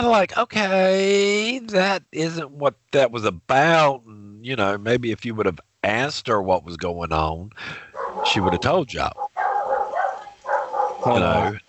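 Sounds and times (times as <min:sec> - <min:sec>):
speech: 0:00.0 - 0:09.3, 0:11.0 - 0:11.6
dogs barking: 0:07.9 - 0:11.5.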